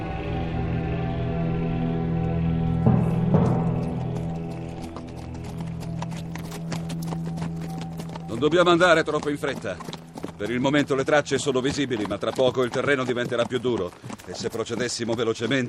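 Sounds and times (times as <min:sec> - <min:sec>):
droning tonal background: 0:00.0 - 0:12.3
horses' hooves clip-clopping: 0:03.1 - 0:15.6
speech: 0:08.4 - 0:15.6.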